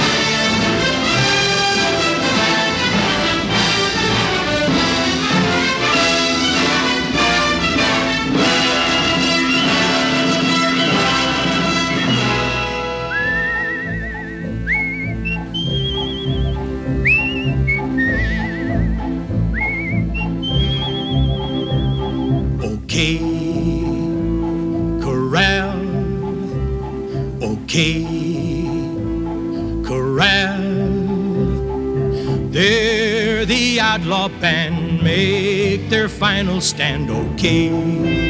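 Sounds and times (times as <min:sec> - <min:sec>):
full orchestral western-style theme music: 0:00.0 - 0:38.2
person whistling a western-style theme tune: 0:08.5 - 0:12.4, 0:13.0 - 0:34.1
speech: 0:36.3 - 0:38.2.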